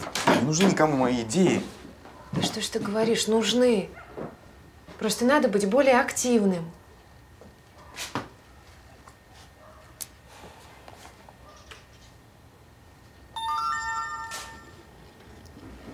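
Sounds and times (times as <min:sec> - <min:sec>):
speech: 0:00.4 - 0:04.4, 0:05.0 - 0:06.8
phone message notification chime: 0:13.4 - 0:14.8.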